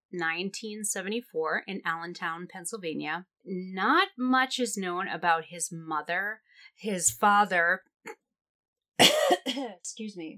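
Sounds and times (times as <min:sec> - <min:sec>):
speech: 0:00.1 - 0:08.2, 0:09.0 - 0:10.3
person burping and coughing at the same time: 0:09.0 - 0:09.8.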